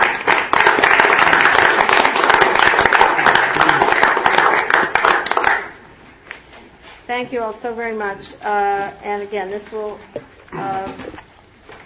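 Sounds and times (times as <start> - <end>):
audience applause for a commission after a vote: 0.0 - 5.8
speech: 7.2 - 11.0.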